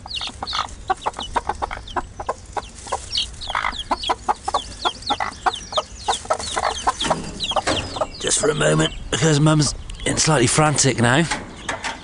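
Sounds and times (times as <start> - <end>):
chicken squawks: 0.0 - 8.9
young Australorp Sussex cross chickens clucking inside a chicken ark: 0.0 - 12.0
speech: 8.4 - 11.4.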